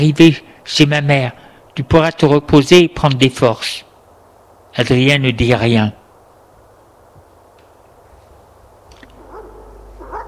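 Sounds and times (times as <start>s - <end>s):
speech: 0.0s - 3.9s, 4.7s - 6.0s
dogs barking sharply: 9.1s - 10.2s.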